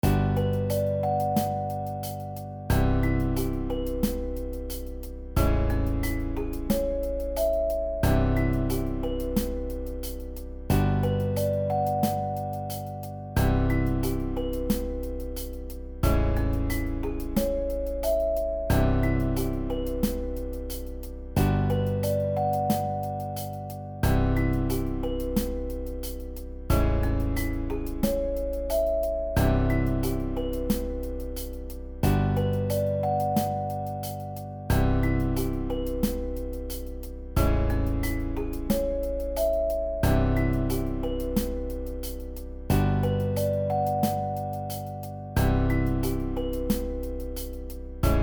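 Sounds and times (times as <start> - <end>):
elevator music: 0.0 - 48.2.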